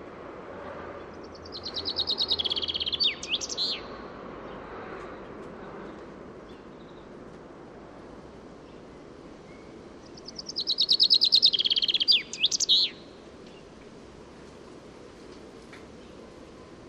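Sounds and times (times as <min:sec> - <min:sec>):
Common chaffinch song, Fringilla coelebs: 0:01.4 - 0:03.9, 0:09.4 - 0:13.6.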